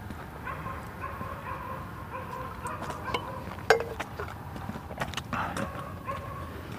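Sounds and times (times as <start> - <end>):
steady outdoor hush: 0.0 - 6.7
several neighborhood dogs barking: 0.4 - 4.0, 5.4 - 6.6.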